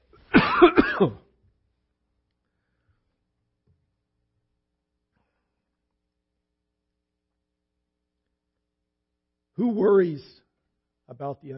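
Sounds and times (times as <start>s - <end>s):
person with a sore throat coughing: 0.3s - 1.2s
person with a sore throat clearing throat: 0.4s - 1.3s
speech: 1.0s - 1.2s, 9.6s - 10.3s, 11.1s - 11.5s.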